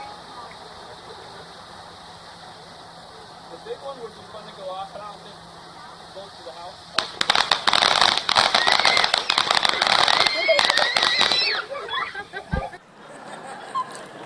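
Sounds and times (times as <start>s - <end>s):
fireworks crackling and popping on the 4th of July in Michigan: 0.0s - 12.8s
children shouting and laughing: 8.4s - 14.2s.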